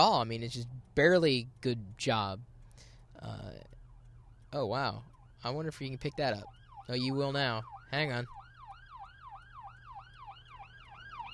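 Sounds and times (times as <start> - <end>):
speech: 0.0 - 2.5, 3.2 - 3.7, 4.5 - 8.4
ambulance siren yelping: 3.1 - 11.3.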